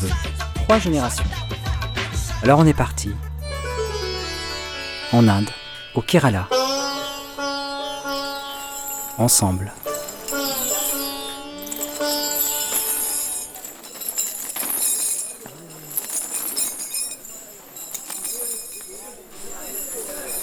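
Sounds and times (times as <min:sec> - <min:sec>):
speech: 0:00.0 - 0:01.4, 0:02.4 - 0:03.3, 0:05.1 - 0:06.6, 0:09.2 - 0:09.8
metal chain clinking on an elephant's leg: 0:03.6 - 0:20.4
voices in background: 0:04.3 - 0:20.4.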